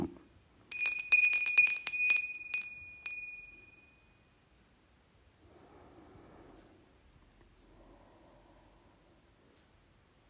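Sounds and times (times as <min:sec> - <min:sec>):
small meditation bell ringing: 0:00.7 - 0:04.4.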